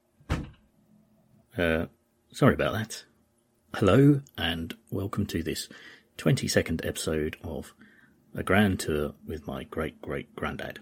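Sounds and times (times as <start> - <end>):
door being shut: 0.2 - 0.7
speech: 1.6 - 3.1, 3.7 - 10.8.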